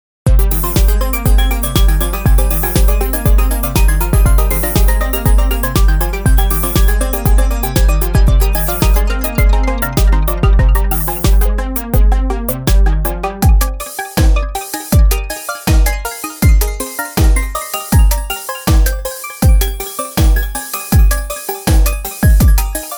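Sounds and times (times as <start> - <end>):
tempo sweeps: 0.3 - 22.9.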